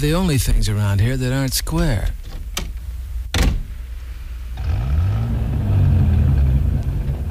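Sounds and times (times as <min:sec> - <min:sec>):
speech: 0:00.0 - 0:02.2
sharp clunks: 0:02.3 - 0:03.7
Thunderbird car engine turning over and revving: 0:04.5 - 0:07.3.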